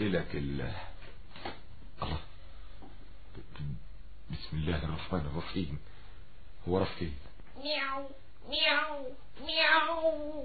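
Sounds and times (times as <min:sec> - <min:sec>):
speech: 0:00.0 - 0:00.9, 0:04.3 - 0:06.0, 0:06.6 - 0:10.4
cat meowing in a desert: 0:07.6 - 0:10.4.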